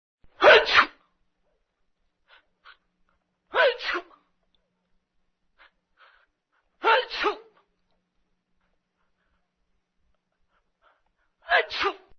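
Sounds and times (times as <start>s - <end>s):
person sneezing: 0.4s - 1.0s, 3.5s - 4.2s, 6.8s - 7.6s, 11.4s - 12.1s.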